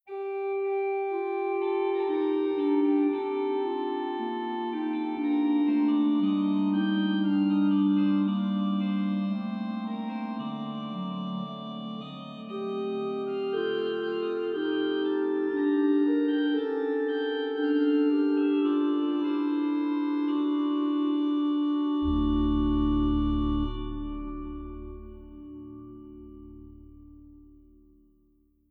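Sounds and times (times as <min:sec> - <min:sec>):
organ playing Voix humaine stop: 0:00.1 - 0:27.8.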